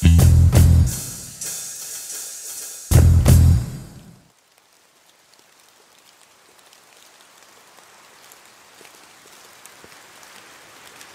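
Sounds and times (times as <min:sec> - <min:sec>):
rain falling: 0:00.0 - 0:11.1
rumbling surge of heavy rain: 0:02.9 - 0:11.1.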